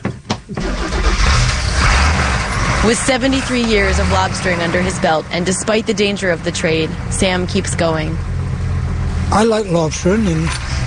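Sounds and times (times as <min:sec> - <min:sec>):
lobster boat engine starting: 0:00.6 - 0:08.2, 0:09.3 - 0:10.8
speech: 0:02.8 - 0:08.3, 0:09.3 - 0:10.8.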